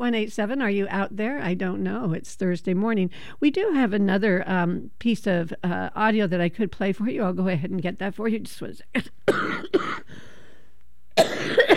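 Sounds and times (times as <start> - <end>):
speech: 0.0 - 10.3, 11.2 - 11.7
man coughing harshly: 9.0 - 10.1, 11.2 - 11.7.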